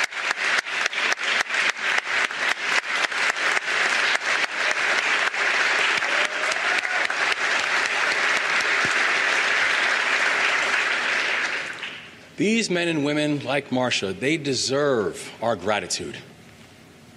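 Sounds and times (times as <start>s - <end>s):
crowd applauding: 0.0s - 12.2s
speech: 12.4s - 16.3s.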